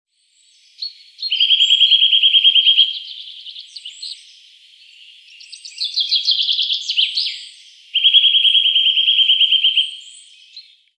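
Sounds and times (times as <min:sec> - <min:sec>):
Eurasian nuthatch giving ringing trills: 0:01.2 - 0:04.2, 0:05.7 - 0:10.1.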